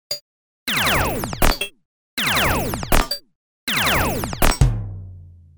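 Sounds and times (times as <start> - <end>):
fast drum shred: 0.7 - 3.2, 3.8 - 4.7.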